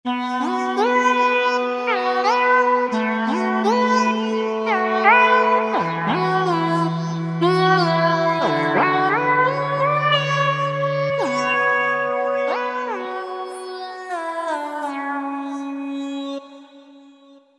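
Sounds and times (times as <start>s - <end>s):
synthesizer vocal patch: 0.1s - 17.4s.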